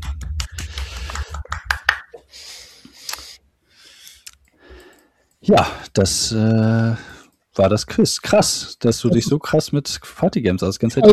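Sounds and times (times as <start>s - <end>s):
small group clapping: 0.0s - 2.2s
speech: 5.5s - 11.1s.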